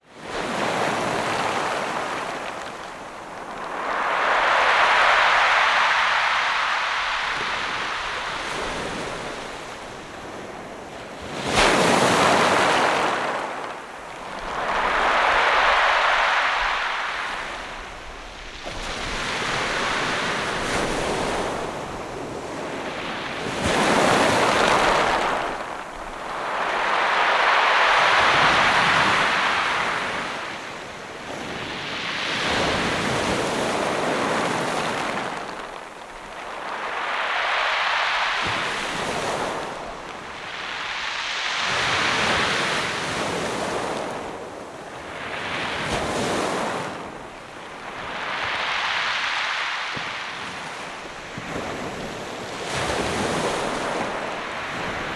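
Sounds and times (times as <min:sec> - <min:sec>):
Mediterranean ocean waves crashing onto stony beach: 0:00.0 - 0:55.1.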